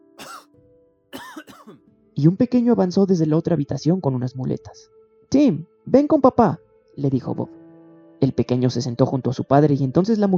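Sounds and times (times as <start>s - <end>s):
child coughing hoarsely: 0.2s - 0.5s, 1.2s - 1.8s
speech: 2.2s - 7.6s, 8.2s - 10.3s.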